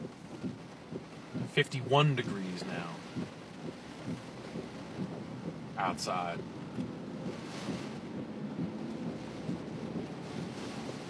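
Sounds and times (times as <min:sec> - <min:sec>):
faint low rumble: 0:00.0 - 0:11.0
heavy rain pouring down outdoors: 0:00.0 - 0:11.0
speech: 0:01.6 - 0:03.4, 0:05.8 - 0:06.5.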